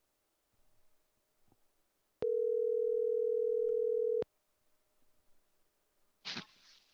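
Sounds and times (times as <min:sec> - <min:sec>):
telephone dial tone: 0:02.2 - 0:04.2.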